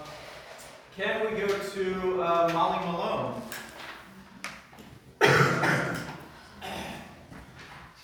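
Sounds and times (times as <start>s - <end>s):
speech: 1.0s - 3.4s
harsh cough: 5.2s - 7.1s.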